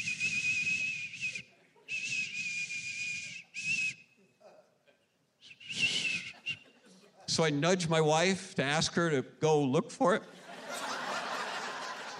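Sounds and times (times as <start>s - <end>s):
high steady airy whistling inside a house at night: 0.0s - 4.2s, 5.4s - 6.7s
laughter: 1.4s - 2.1s, 6.0s - 7.3s, 10.2s - 12.1s
speech: 7.4s - 10.4s.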